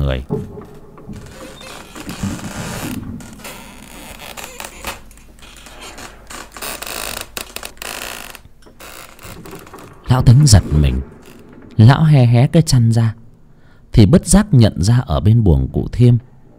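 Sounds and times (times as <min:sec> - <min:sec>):
wooden doors creaking and rattling in the wind: 0:00.0 - 0:13.7
speech: 0:00.1 - 0:01.5, 0:10.1 - 0:11.1, 0:11.8 - 0:13.2, 0:13.9 - 0:16.3.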